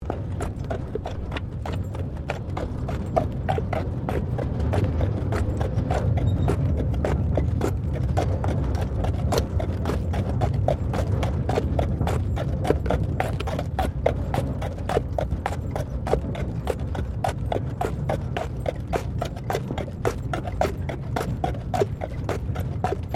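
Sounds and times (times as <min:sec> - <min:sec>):
horse drawn tramcar on gravel: 0:00.0 - 0:23.1.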